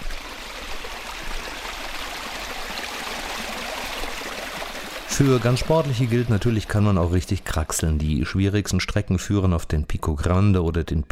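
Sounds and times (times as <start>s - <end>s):
water babbling along a narrow levada irrigation channel beside a hiking path: 0.0s - 8.0s
speech: 5.2s - 11.1s.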